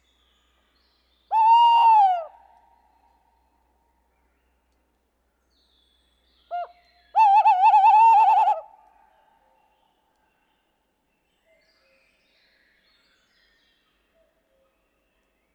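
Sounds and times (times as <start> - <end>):
tawny owl hooting: 1.3 - 2.4, 7.2 - 8.7.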